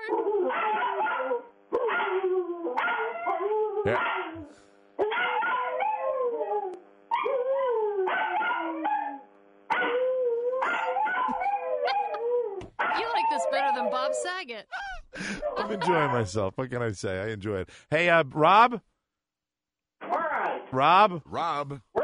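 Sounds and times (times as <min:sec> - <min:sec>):
Jack Russell terrier barking and howling: 0:00.0 - 0:14.3, 0:15.3 - 0:16.3
speech: 0:03.8 - 0:04.1, 0:15.8 - 0:18.9, 0:20.7 - 0:21.9
laughter: 0:11.3 - 0:12.3, 0:14.8 - 0:16.4.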